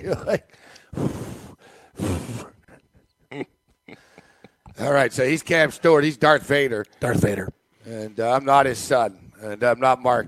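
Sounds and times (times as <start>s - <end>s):
speech: 0.0s - 1.2s, 4.9s - 10.2s
man breathing heavily with his mouth close to a microphone: 0.5s - 2.6s.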